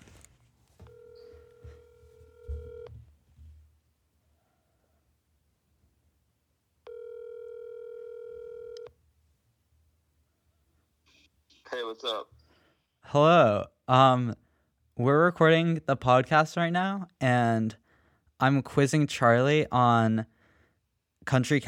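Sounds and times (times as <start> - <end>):
buzzy phone line ringback tones: 0.8 - 2.9, 6.9 - 8.9
speech: 11.8 - 12.3, 13.1 - 14.4, 15.0 - 17.8, 18.4 - 20.3, 21.2 - 21.6.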